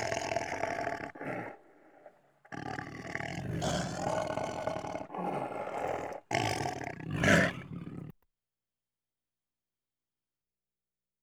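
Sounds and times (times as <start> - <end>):
tiger growling in long rough rumbling bursts: 0.0 - 8.1.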